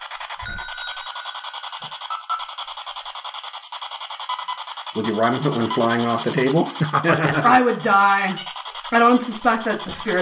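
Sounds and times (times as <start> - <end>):
tap on a tabletop bell in the center of a table: 0.4 - 1.6
laughter: 5.0 - 8.4
speech: 5.0 - 10.2.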